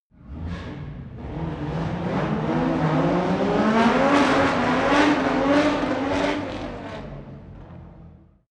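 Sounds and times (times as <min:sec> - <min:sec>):
F1 racing car accelerating heavily: 0:00.1 - 0:08.4.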